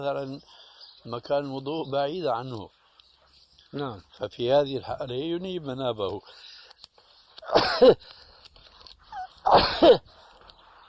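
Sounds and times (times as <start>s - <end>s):
speech: 0.0s - 2.8s, 3.7s - 6.5s, 7.4s - 8.2s, 9.4s - 10.2s
human sneezes: 7.4s - 8.0s, 9.1s - 10.1s.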